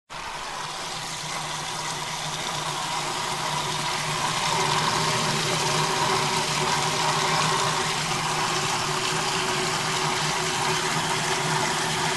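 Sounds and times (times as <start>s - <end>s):
washing machine: 0.1s - 12.1s.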